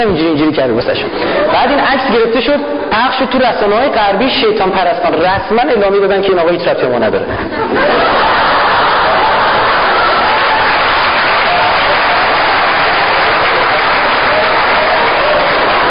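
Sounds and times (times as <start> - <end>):
speech: 0.0 - 8.4
laughter: 1.0 - 1.8, 7.2 - 11.7
large audience applauding: 8.2 - 15.8.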